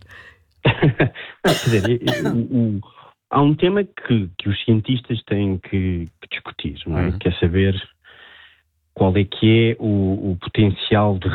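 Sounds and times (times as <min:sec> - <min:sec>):
speech: 0:00.8 - 0:08.0, 0:09.0 - 0:11.3
woman coughing loudly and hoarsely: 0:01.5 - 0:02.4.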